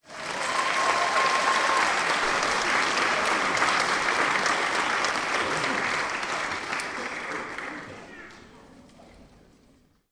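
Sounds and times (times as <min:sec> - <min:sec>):
theatre audience applause: 0:00.0 - 0:08.5.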